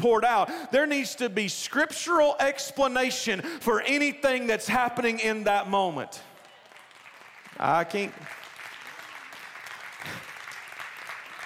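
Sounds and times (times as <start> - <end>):
speech: 0.0 - 6.3, 7.6 - 8.4
audience clapping during a church service: 6.2 - 11.4.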